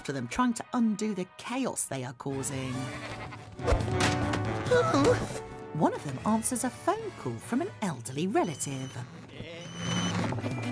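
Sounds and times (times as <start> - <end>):
speech: 0.0 - 10.6
sheep bleating inside a house: 2.7 - 3.4.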